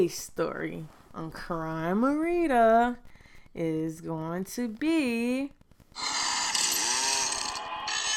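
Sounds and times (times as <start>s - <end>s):
speech: 0.0s - 6.2s
chainsaw running: 6.0s - 8.0s.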